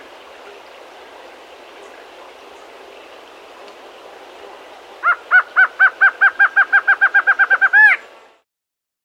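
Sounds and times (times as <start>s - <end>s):
streak-backed antshrike calling in South America: 5.0s - 8.0s.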